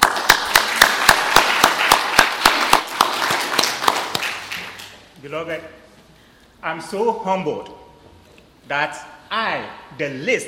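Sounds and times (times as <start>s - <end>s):
audience applause: 0.0s - 4.9s
speech: 5.3s - 5.8s, 6.6s - 7.8s, 8.6s - 10.4s.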